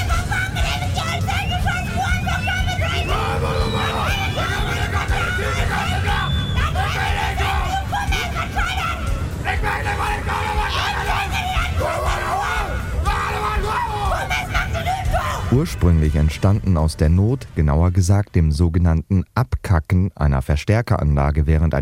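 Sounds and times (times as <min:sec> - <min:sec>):
people screaming at a dialect shouting festival: 0:00.0 - 0:15.7
crowd noise at a dialect shouting festival: 0:00.0 - 0:16.8
speech: 0:15.5 - 0:21.8.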